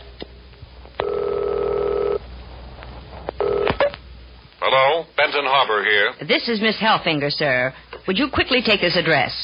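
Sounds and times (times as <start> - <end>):
yellow telephone steady electronic ring in long bursts: 1.0 - 2.2, 3.4 - 3.9
speech: 5.3 - 9.4.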